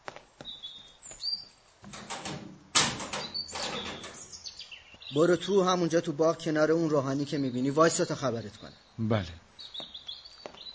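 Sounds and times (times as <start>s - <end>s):
birds chirping: 0.0s - 10.7s
garden entrance door being opened by a guard: 1.8s - 4.4s
speech: 5.1s - 9.4s.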